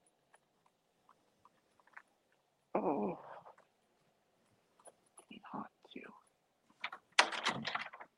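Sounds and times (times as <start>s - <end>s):
door clicks and knocks: 6.8s - 8.1s.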